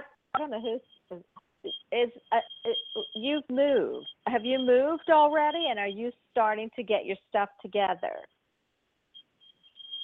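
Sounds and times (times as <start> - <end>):
house alarm beeping, high-pitched electronic: 0.4 - 6.1, 9.2 - 10.0
speech: 0.4 - 8.4.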